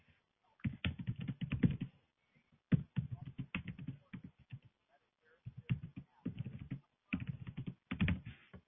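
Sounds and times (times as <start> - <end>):
typing on a computer keyboard: 0.6 - 1.9, 2.7 - 4.7, 5.5 - 8.3.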